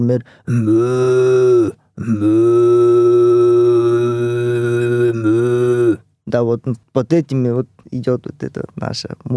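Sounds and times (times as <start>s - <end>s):
speech: 0.0s - 3.1s, 6.3s - 9.3s
person imitating a cow mooing: 0.5s - 6.0s.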